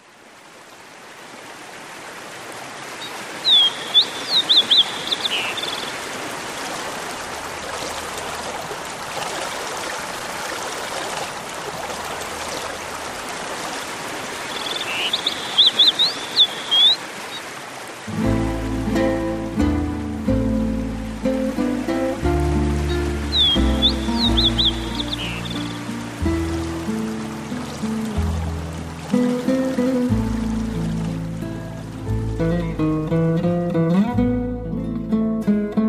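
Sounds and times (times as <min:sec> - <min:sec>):
forest stream in the rain rushing downstream: 0:00.0 - 0:35.8
bird chirping: 0:03.0 - 0:06.0, 0:14.5 - 0:17.4, 0:22.8 - 0:25.9.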